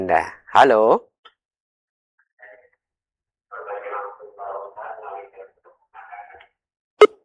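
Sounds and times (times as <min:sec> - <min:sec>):
speech: 0:00.1 - 0:01.1
caller's thin voice through a telephone line: 0:03.5 - 0:06.4.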